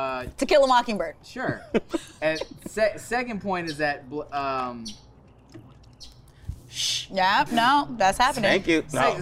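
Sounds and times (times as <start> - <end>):
speech: 0.0 - 5.6, 6.7 - 9.2
low hum: 0.0 - 9.2
bird chirping: 1.8 - 6.5.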